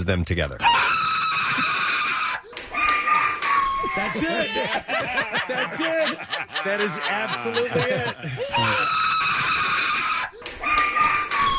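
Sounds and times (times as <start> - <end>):
speech: 0.0 - 0.8, 3.9 - 9.1
recorded high-pitched screams played back: 0.6 - 4.8, 8.5 - 11.5
laughter: 0.7 - 11.5.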